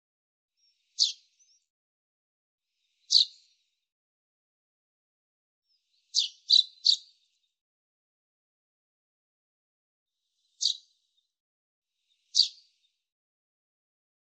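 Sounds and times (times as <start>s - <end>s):
common chaffinch giving short sharp high chip calls: 1.0s - 1.6s, 3.1s - 3.5s, 6.1s - 7.1s, 10.6s - 10.9s, 12.3s - 12.7s.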